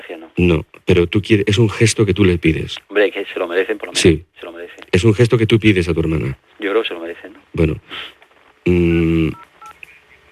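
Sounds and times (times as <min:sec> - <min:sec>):
speech: 0:00.1 - 0:09.4
electronic telephone tone after a dropped mobile call: 0:08.7 - 0:09.8.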